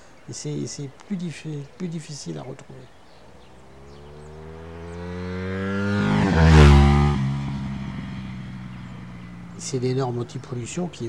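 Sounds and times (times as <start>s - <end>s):
speech: 0.3s - 3.0s, 9.7s - 11.0s
motorcycle engine idling and revving: 3.4s - 11.0s.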